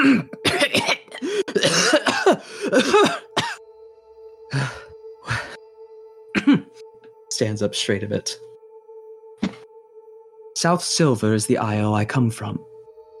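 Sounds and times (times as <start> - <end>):
person acting out raspy exaggerated coughing: 0.0 - 3.6, 6.4 - 6.8
person acting out throat clearing: 0.0 - 3.6, 6.4 - 6.8
speech: 7.4 - 8.5, 10.6 - 12.7.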